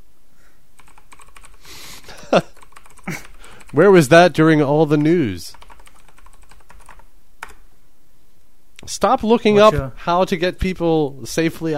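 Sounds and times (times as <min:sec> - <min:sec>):
loud typing on a new computer keyboard: 0:00.8 - 0:03.8, 0:04.9 - 0:07.6
speech: 0:03.7 - 0:05.6, 0:09.0 - 0:11.7.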